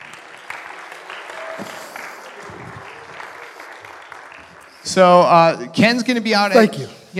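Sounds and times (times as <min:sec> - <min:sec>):
crowd applauding: 0:00.0 - 0:06.1
scattered cheers: 0:00.4 - 0:04.0
speech: 0:04.9 - 0:07.1.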